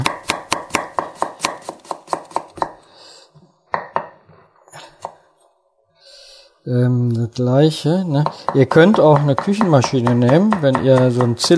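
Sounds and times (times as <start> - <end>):
knife chopping food on a cutting board in a home kitchen: 0.0 - 2.8, 8.2 - 11.5
speech: 6.7 - 11.5.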